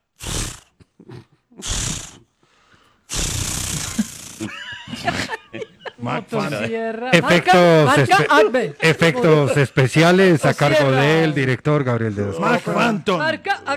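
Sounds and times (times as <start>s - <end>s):
voice imitating a chainsaw trying to start: 0.2s - 0.7s, 1.6s - 2.2s, 3.1s - 5.4s
laughter-like vocal sounds: 0.2s - 2.2s, 3.1s - 7.6s
speech: 6.0s - 13.7s.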